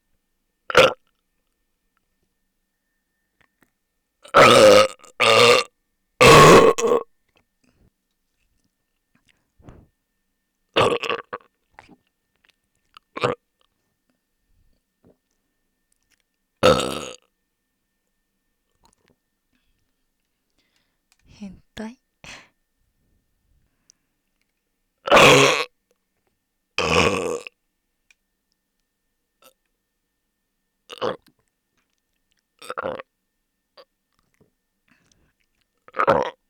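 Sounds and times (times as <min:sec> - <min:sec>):
loud burping: 0:00.7 - 0:01.0, 0:04.3 - 0:07.0, 0:10.8 - 0:11.4, 0:16.6 - 0:17.2, 0:25.1 - 0:25.7, 0:26.8 - 0:27.4
small throaty sounds: 0:09.6 - 0:09.9.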